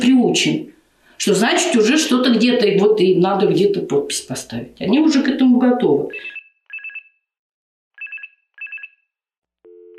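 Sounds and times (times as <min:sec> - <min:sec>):
speech: 0:00.0 - 0:06.4
telephone ringing in short trilling bursts: 0:06.1 - 0:07.1, 0:08.0 - 0:09.0, 0:09.7 - 0:09.9.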